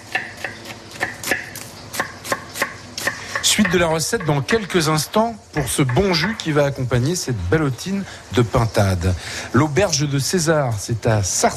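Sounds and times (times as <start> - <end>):
knife finely chopping onions in a chef's kitchen: 0.0 - 4.7
speech: 3.5 - 11.5.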